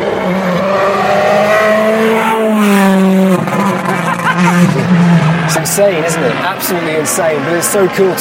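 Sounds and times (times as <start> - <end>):
rally car roaring past at speed on a super-soft sandy stage: 0.0 - 8.2
laughter: 3.5 - 5.1
speech: 5.8 - 8.2.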